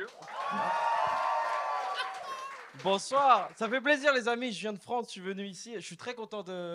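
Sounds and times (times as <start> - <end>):
audience at a stage show in Quebec cheering and shouting: 0.1 - 2.8
speech: 2.8 - 6.7.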